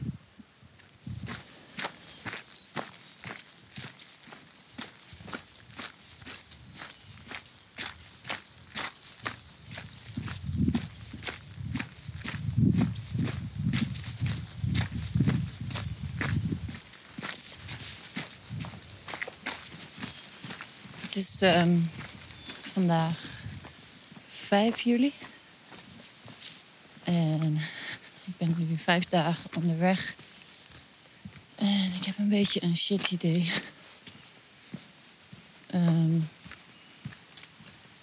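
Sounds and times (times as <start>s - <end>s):
light wind: 0.0s - 38.0s
rustling: 0.8s - 24.1s
footsteps crunching along outdoors at a walking pace: 0.8s - 38.0s
speech: 21.4s - 22.0s, 22.8s - 23.2s, 24.5s - 25.3s, 28.9s - 30.3s, 32.3s - 33.8s.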